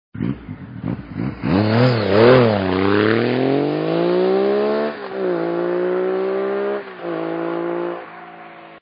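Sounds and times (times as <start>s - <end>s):
Triumph Daytona in-line three-cylinder motorcycle engine: 0.2s - 8.8s.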